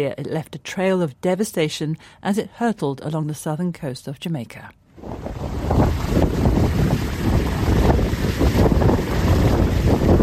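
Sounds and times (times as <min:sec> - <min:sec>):
speech: 0:00.0 - 0:05.6
hurricane-force winds over 230 km/h roaring: 0:05.0 - 0:10.2.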